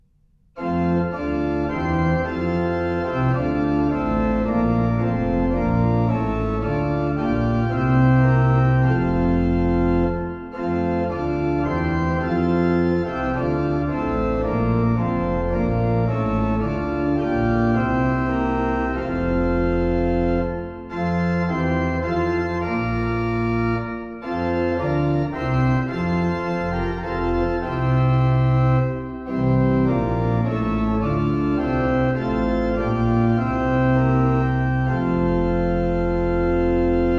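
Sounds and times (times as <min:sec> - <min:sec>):
pipe organ Prinzipalchor stops playing: 0:00.6 - 0:37.1.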